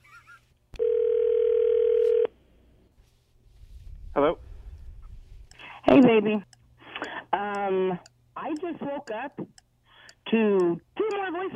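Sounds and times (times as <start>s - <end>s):
telephone dial tone as a call is placed: 0.8s - 2.3s
speech: 6.1s - 6.5s, 7.7s - 9.5s, 10.3s - 11.5s.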